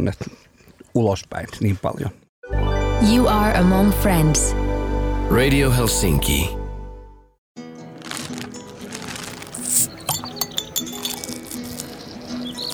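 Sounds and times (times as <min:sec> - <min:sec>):
speech: 0:00.0 - 0:00.4, 0:01.0 - 0:02.2, 0:03.0 - 0:04.6, 0:05.3 - 0:06.6
glasses clinking in a toast: 0:09.6 - 0:11.8.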